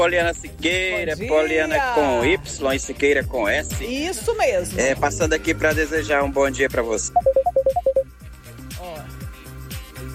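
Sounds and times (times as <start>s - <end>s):
speech: 0.0s - 7.4s
loud electronic phone beeps from someone calling: 7.1s - 8.1s.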